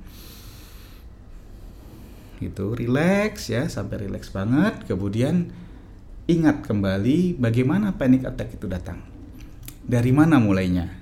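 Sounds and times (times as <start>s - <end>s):
slow deep breath in through the nose: 0.0s - 2.4s
speech: 2.4s - 5.6s, 6.3s - 9.1s, 9.9s - 11.0s.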